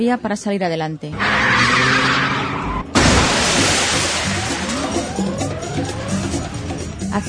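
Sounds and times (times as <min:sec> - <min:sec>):
speech: 0:00.0 - 0:02.1
car tires skidding: 0:01.2 - 0:06.6
high-powered car engine roaring and revving: 0:01.2 - 0:07.1
car crashing into a shop window: 0:02.9 - 0:06.3
shop window debris scattering: 0:02.9 - 0:06.6.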